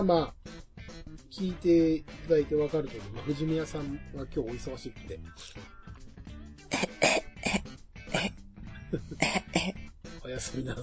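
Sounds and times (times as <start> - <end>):
speech: 0.0 - 0.6, 1.3 - 5.8, 8.9 - 9.4, 10.3 - 10.8
person imitating choking and coughing: 6.7 - 9.8.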